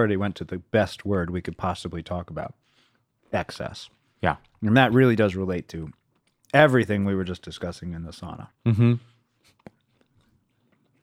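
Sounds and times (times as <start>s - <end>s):
speech: 0.0s - 2.7s, 3.3s - 9.6s
chewing dried bison snack: 5.9s - 6.5s, 9.4s - 11.0s.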